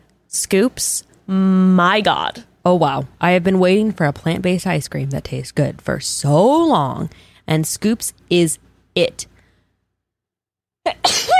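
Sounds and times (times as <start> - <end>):
speech: 0.3 - 9.3
person sneezing: 10.9 - 11.3.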